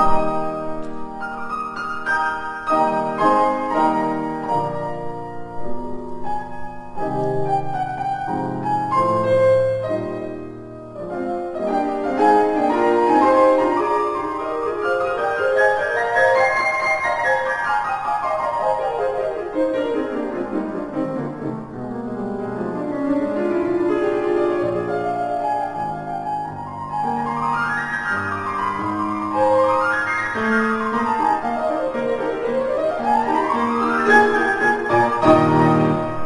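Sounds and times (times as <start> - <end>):
new piano playing a classical piece: 0.0 - 36.2.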